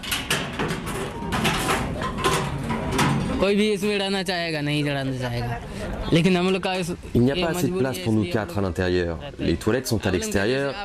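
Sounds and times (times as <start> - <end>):
old corrugated metal sheet door of a small brick workers' house dragged and rattled: 0.0 - 3.6
speech: 3.4 - 10.8.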